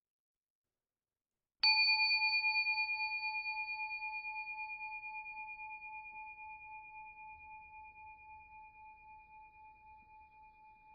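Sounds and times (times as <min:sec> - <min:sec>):
single meditation bell ringing: 0:01.6 - 0:08.2.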